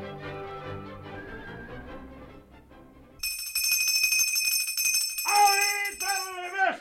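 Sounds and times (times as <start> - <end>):
small bell rung to summon servants: 3.2 - 6.6.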